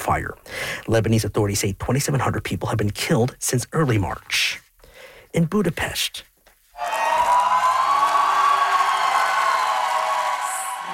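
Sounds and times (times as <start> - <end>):
speech: 0.1 - 4.6, 5.3 - 6.3
large crowd cheering, shouting and whooping: 6.8 - 10.9.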